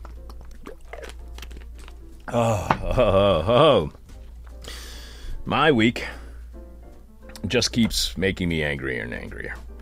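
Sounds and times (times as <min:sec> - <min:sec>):
person sipping water: 0:00.0 - 0:02.4
speech: 0:02.3 - 0:04.0, 0:05.5 - 0:06.2, 0:07.4 - 0:09.7.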